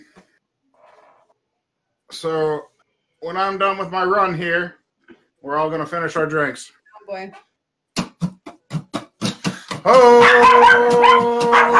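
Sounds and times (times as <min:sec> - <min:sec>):
speech: 0:02.1 - 0:04.8, 0:05.4 - 0:07.5, 0:09.8 - 0:11.7
dog howling: 0:09.9 - 0:11.7
dog barking: 0:10.1 - 0:11.7.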